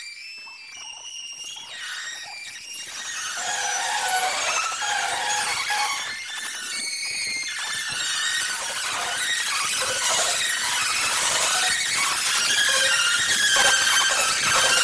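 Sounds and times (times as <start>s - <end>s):
string birds: 1.3s - 14.8s.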